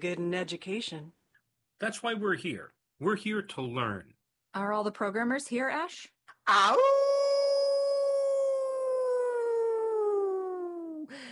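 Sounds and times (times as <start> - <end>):
speech: 0.0 - 1.2, 1.8 - 7.1
person imitating a coyote howl: 6.5 - 11.1.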